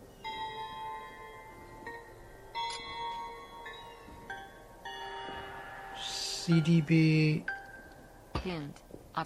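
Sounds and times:
soft hum: 0:00.0 - 0:09.2
crystal bell chimes in a video game puzzle: 0:00.1 - 0:08.2
speech: 0:06.5 - 0:07.5, 0:08.4 - 0:09.2.

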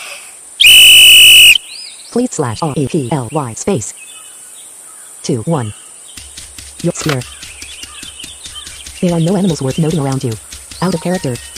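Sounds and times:
hiss: 0:00.0 - 0:00.7, 0:01.5 - 0:09.4
whistle blown: 0:00.6 - 0:01.6
speech: 0:02.1 - 0:04.1, 0:05.3 - 0:05.8, 0:06.8 - 0:07.4, 0:09.0 - 0:11.5.

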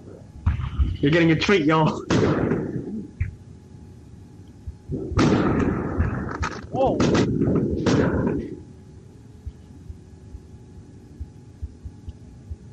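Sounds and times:
speech: 0:01.0 - 0:02.6
firework mortars exploding: 0:01.8 - 0:02.9, 0:04.9 - 0:08.6
M80 firecrackers exploding: 0:05.0 - 0:08.6.

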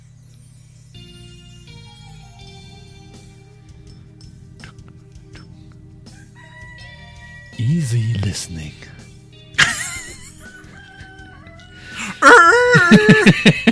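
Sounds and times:
droning tonal background: 0:00.0 - 0:13.6
rooster crowing on a farm: 0:06.1 - 0:08.0, 0:09.9 - 0:13.1
speech: 0:07.6 - 0:08.9, 0:12.9 - 0:13.6
laughter: 0:09.6 - 0:10.8, 0:12.0 - 0:13.6.

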